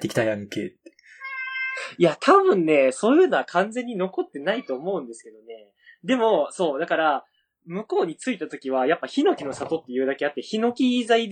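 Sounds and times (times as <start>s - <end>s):
speech: 0.0s - 0.8s, 1.8s - 11.3s
cat meowing: 1.2s - 2.0s, 4.4s - 5.2s.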